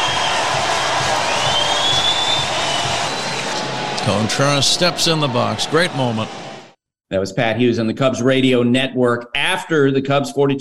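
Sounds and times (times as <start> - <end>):
large baseball stadium crowd cheering and applauding in a standing ovation: 0.0 - 6.8
faint high whistle: 1.2 - 3.4
speech: 4.1 - 6.4, 7.1 - 10.5.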